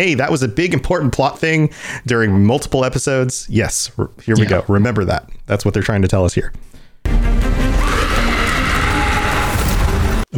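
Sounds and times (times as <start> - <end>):
speech: 0.0 - 6.7
powerful piercing scream: 7.6 - 10.3.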